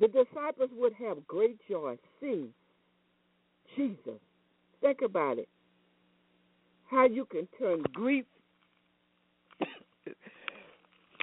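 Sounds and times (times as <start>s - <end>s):
speech: 0.0s - 2.6s, 3.7s - 5.6s, 6.9s - 8.4s, 9.6s - 10.4s
person coughing: 9.6s - 10.2s
person sneezing: 9.6s - 10.2s.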